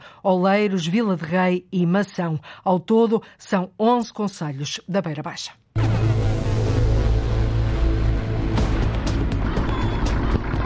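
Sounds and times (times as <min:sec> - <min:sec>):
speech: 0:00.2 - 0:05.6
boat engine running: 0:05.8 - 0:10.6.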